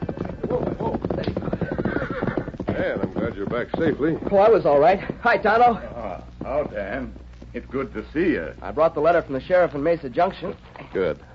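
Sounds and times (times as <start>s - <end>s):
horse whinnying: 0.0s - 3.4s
horse hooves clip-clopping: 0.0s - 11.3s
speech: 3.4s - 11.3s.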